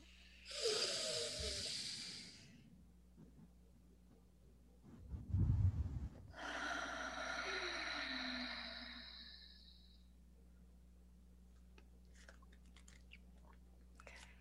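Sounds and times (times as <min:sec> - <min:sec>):
deep breaths during a casual conversation: 0:00.0 - 0:02.7, 0:05.0 - 0:10.1
low rough burst of noise: 0:04.9 - 0:06.3.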